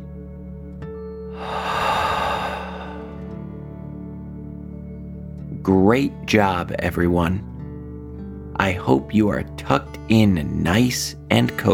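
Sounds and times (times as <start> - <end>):
deep breath in through nose and out through mouth during a breathing exercise: 1.3 - 3.4
speech: 5.6 - 7.5, 8.7 - 11.7.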